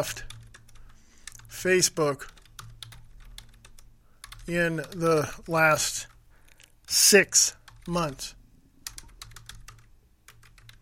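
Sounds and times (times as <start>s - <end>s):
speech: 0.0s - 0.3s, 1.6s - 2.4s, 4.5s - 6.1s, 6.9s - 8.4s
typing on a computer keyboard: 0.0s - 1.5s, 2.2s - 6.7s, 7.6s - 8.2s, 8.8s - 10.8s.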